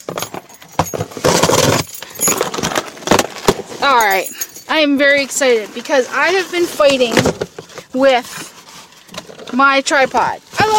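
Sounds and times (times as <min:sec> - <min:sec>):
keys jingling: 0:00.0 - 0:02.7, 0:03.9 - 0:04.8
speech: 0:03.9 - 0:08.4, 0:09.6 - 0:10.7.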